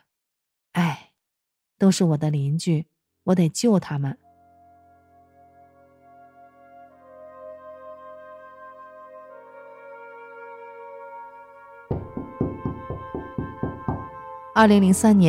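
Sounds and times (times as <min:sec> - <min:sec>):
speech: 0:01.8 - 0:04.2, 0:14.6 - 0:15.2
soft sustained music: 0:04.2 - 0:15.2
loud rapid sharp knocks on a door: 0:11.9 - 0:14.2.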